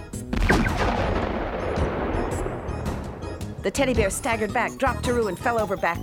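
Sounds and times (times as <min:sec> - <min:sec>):
blunderbuss-style blaster gun firing: 0:00.3 - 0:03.4
speech: 0:03.6 - 0:06.0.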